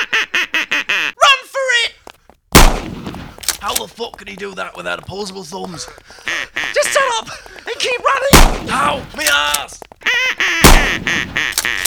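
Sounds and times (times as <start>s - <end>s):
duck quacking: 0.0s - 1.4s, 5.8s - 8.0s, 10.0s - 11.8s
single loud gunshot echoing: 2.5s - 3.5s, 8.3s - 9.2s, 10.6s - 11.8s
speech: 3.8s - 9.8s, 10.4s - 11.8s.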